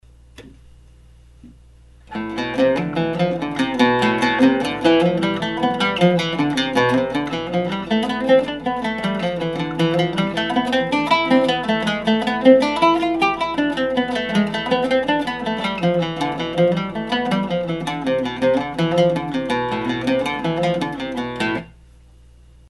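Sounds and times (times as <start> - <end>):
oud exercise: 2.1 - 21.7.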